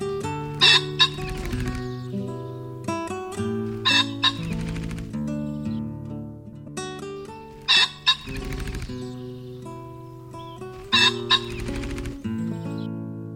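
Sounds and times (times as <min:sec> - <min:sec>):
pheasant calling: 0:00.1 - 0:05.8, 0:07.1 - 0:12.9
tonal clucking: 0:00.3 - 0:05.1, 0:07.3 - 0:12.9.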